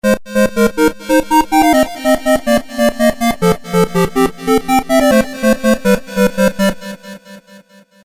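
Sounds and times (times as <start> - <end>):
Roland JD800 square wave synth: 0.0 - 7.2.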